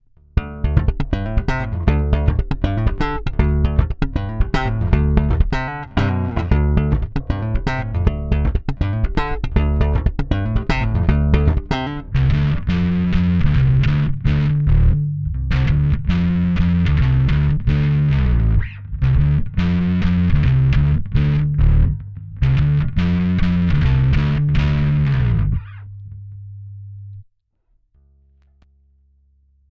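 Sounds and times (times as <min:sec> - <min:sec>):
guitar played clean, dirty and dry: 0:00.3 - 0:26.3.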